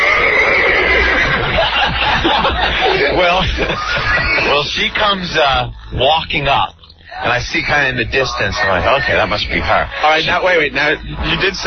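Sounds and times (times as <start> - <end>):
horse neighing: 0.0 - 1.6
laughter: 0.0 - 5.7
speech: 3.4 - 11.6.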